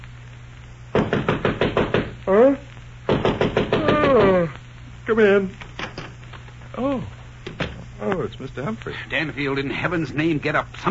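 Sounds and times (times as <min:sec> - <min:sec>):
man knocking on a bedroom door: 0:01.0 - 0:02.2, 0:03.1 - 0:04.2
speech: 0:02.3 - 0:02.6, 0:05.1 - 0:05.6, 0:08.0 - 0:10.8.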